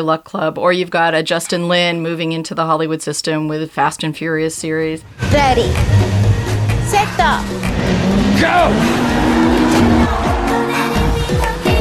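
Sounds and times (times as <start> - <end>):
speech: 0.0 - 6.2, 6.9 - 10.3
race car engines revving and roaring: 5.0 - 11.6
slick tires squealing as the car drifts: 5.0 - 11.6.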